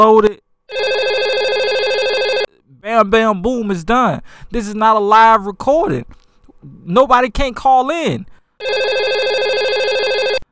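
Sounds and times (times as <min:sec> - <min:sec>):
speech: 0:00.0 - 0:01.0, 0:02.8 - 0:09.7
telephone ringing with electronic trill: 0:00.7 - 0:02.5, 0:08.6 - 0:10.5.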